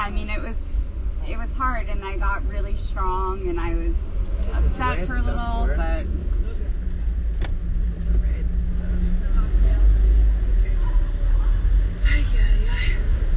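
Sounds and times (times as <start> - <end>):
car driving on the road: 0.0 - 13.3
voices: 1.2 - 13.3
speech: 1.3 - 6.4.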